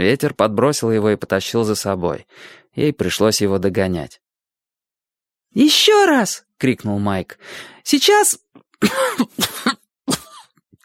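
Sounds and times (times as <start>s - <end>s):
speech: 0.0s - 4.2s, 5.5s - 9.8s
dry hoarse coughing: 8.8s - 10.6s.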